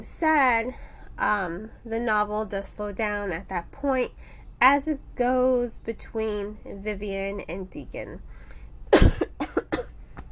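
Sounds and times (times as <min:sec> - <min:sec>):
speech: 0:00.0 - 0:09.2
person coughing: 0:08.9 - 0:09.9.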